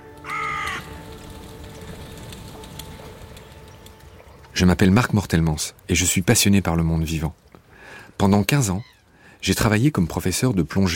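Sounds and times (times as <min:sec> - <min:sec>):
crow cawing: 0:00.2 - 0:01.0
speech: 0:04.6 - 0:07.6, 0:08.2 - 0:10.9.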